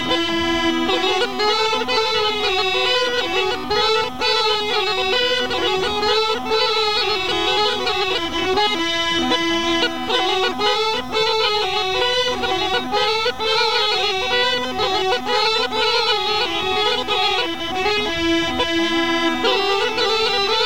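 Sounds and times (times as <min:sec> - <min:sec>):
Rhodope bagpipe playing a break: 0:00.0 - 0:20.6.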